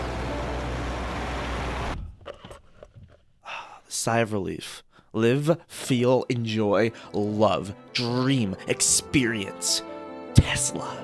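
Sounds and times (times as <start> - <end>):
road and traffic roar: 0.0 - 2.0
speech: 3.9 - 11.0.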